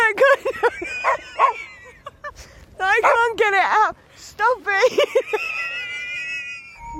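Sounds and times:
laughter: 0.2 - 2.3, 4.9 - 6.8
dog barking: 3.0 - 3.3.

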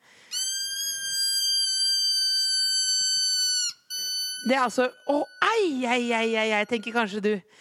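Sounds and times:
squeaky dog toy jewelry squealing when squeezed: 0.3 - 7.1
speech: 4.4 - 7.5.

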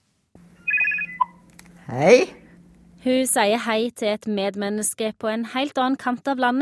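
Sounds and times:
low steady hum: 0.4 - 6.5
telephone ringing with rapid electronic chirps: 0.6 - 1.4
short beep: 0.7 - 1.4
speech: 1.9 - 2.4, 3.0 - 6.5.

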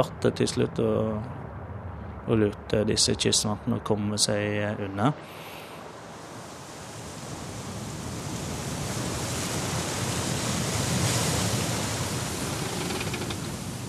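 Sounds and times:
speech: 0.0 - 1.4, 2.3 - 5.5
ocean waves out at sea: 5.2 - 13.8.

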